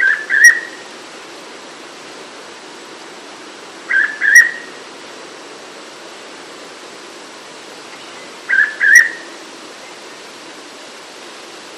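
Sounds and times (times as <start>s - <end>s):
Hooded pitta Pitta sordida whistled call: 0.0s - 0.8s, 3.9s - 4.8s, 8.0s - 9.3s
background hiss: 0.0s - 11.7s.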